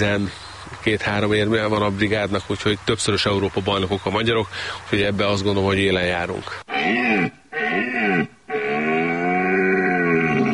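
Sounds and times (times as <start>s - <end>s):
speech: 0.0s - 7.4s
red deer stag roaring: 6.7s - 10.5s.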